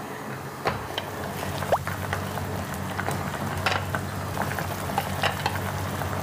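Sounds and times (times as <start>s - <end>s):
water boiling hard in a pot: 0.5s - 6.2s.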